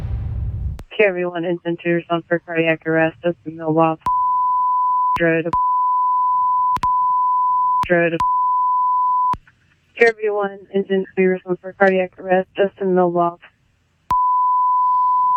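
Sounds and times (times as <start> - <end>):
radio-like voices: 0.9 - 4.1, 5.1 - 5.6, 7.8 - 8.3, 10.0 - 13.5
speech: 1.0 - 4.1, 5.2 - 5.6, 7.9 - 8.3, 10.0 - 13.5
long high-pitched bleep tone censoring an emergency call recording: 4.1 - 9.4, 14.1 - 15.3.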